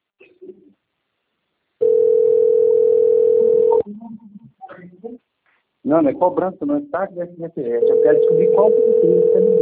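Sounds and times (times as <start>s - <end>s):
telephone ringback tone of an unanswered call: 1.8s - 3.8s, 7.8s - 9.6s
speech: 5.9s - 9.6s.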